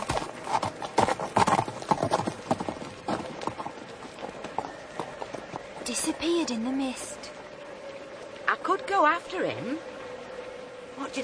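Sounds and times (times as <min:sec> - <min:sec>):
horse hooves clip-clopping: 0:00.0 - 0:08.2
speech: 0:06.0 - 0:07.4, 0:08.6 - 0:09.9, 0:11.0 - 0:11.2.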